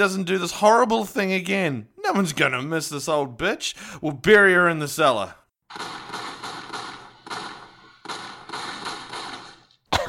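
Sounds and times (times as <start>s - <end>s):
speech: 0.0s - 6.0s
gunshots fired into a closet door: 5.7s - 10.0s.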